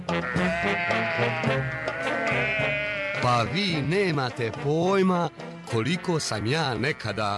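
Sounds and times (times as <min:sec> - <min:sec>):
flock of sheep bleating: 0:00.1 - 0:04.2, 0:06.4 - 0:07.3
speech: 0:03.4 - 0:07.3.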